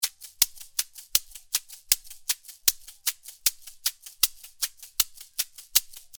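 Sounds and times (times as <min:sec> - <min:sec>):
cabasa: 0:00.0 - 0:06.1.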